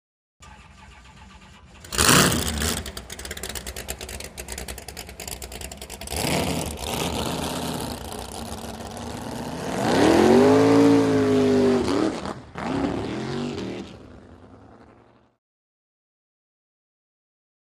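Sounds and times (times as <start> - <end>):
drag boat engine starting and revving: 0.4 - 13.7.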